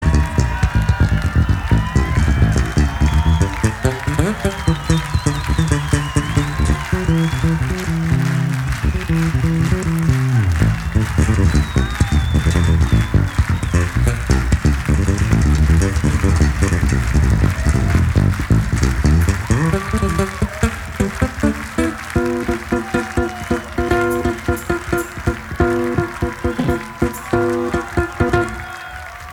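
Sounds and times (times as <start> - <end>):
bass guitar jam: 0.0 - 28.6.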